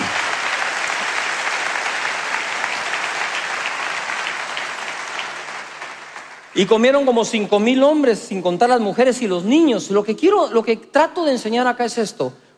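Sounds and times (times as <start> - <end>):
large audience applauding: 0.0 - 7.3
speech: 6.6 - 12.4.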